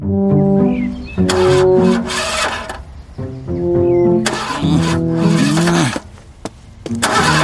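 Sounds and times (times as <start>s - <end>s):
bus engine cranking and sputtering, struggling to start: 1.1s - 3.0s, 3.6s - 6.2s, 6.9s - 7.4s.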